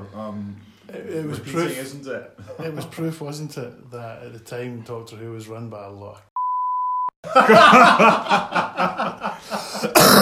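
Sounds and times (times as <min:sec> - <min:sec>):
speech: 0:00.2 - 0:06.3, 0:07.2 - 0:10.2
censor beep: 0:06.4 - 0:07.2
people laughing: 0:07.2 - 0:09.9.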